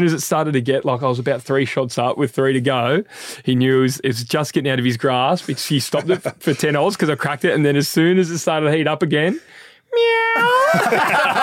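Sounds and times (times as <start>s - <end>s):
speech: 0.0s - 11.4s
laughter: 5.4s - 7.3s, 10.4s - 11.4s
person's voice imitating a cat's meow: 9.9s - 10.8s.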